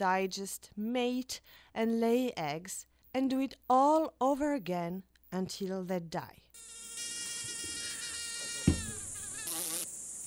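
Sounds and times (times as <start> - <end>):
speech: 0.0 - 6.4
mosquito in flight whining: 6.6 - 10.2
soft thump: 8.6 - 9.2.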